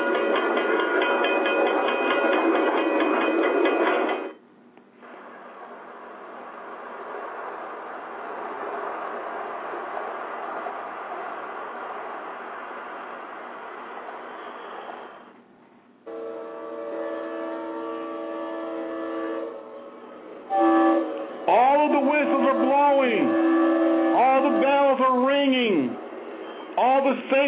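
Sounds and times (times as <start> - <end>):
train rumbling and clattering past: 0.0 - 4.4, 5.0 - 15.4, 16.0 - 27.4
train horn blaring: 16.1 - 25.0.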